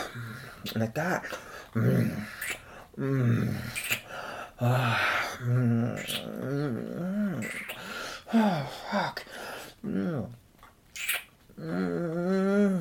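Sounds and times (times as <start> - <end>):
speech: 0.6 - 4.0, 4.6 - 10.4, 11.6 - 12.7
person growling in low throaty bursts: 1.8 - 2.4, 3.0 - 3.8, 4.6 - 7.6, 11.6 - 12.7.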